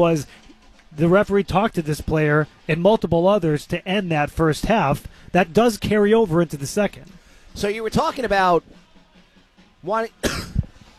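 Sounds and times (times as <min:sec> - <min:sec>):
speech: 0:00.0 - 0:08.8, 0:09.8 - 0:10.5
sports commentator coughing: 0:10.2 - 0:10.7.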